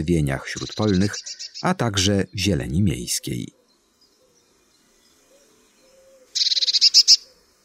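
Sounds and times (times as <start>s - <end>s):
speech: 0.0s - 3.6s
Eurasian blue tit singing a high-pitched trill: 0.5s - 2.4s, 3.6s - 7.4s.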